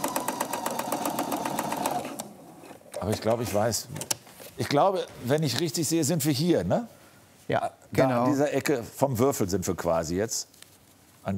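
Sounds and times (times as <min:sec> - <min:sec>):
sewing machine stitching fabric at a corner: 0:00.0 - 0:02.3
speech: 0:03.0 - 0:10.6.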